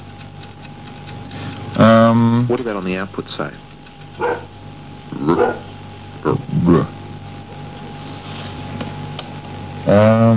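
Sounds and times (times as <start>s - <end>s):
clock ticking: 0.0s - 4.4s
low electrical hum: 0.0s - 10.3s
speech: 2.2s - 4.5s, 5.2s - 7.0s, 9.8s - 10.3s.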